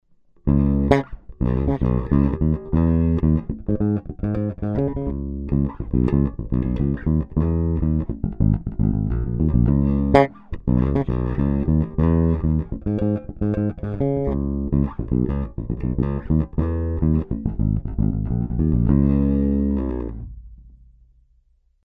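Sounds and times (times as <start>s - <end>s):
bass through Fender Deluxe passive amplifier on mid setting: 0.4s - 21.2s.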